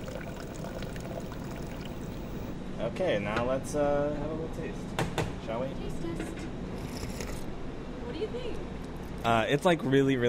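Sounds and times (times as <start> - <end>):
cold water poured by the cupful into a pot of simmered coffee grounds and egg: 0.0 - 2.5
speech: 2.8 - 6.6, 8.2 - 10.2.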